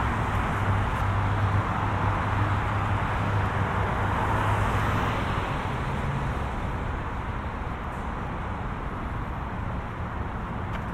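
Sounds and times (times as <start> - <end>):
suburban traffic noise: 0.0 - 10.9.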